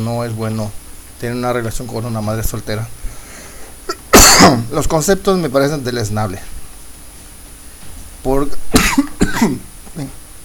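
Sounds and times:
speech: 0.0s - 3.1s, 4.4s - 6.6s, 8.2s - 10.2s
harsh explosive coughs: 3.9s - 4.7s, 8.7s - 9.7s.

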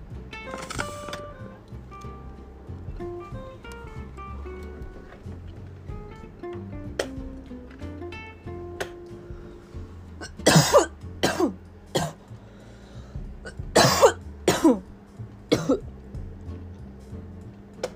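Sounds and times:
faint low hum: 0.0s - 17.9s
person with a harsh hacking coughing fit: 10.2s - 12.2s, 13.5s - 14.8s, 15.5s - 15.8s.

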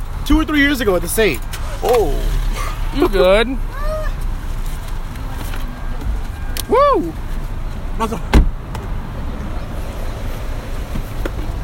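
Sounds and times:
low rumble of vehicle and road noise: 0.0s - 11.6s
speech: 0.3s - 3.8s, 6.7s - 7.2s, 8.0s - 8.4s
car door thump: 8.3s - 8.9s.

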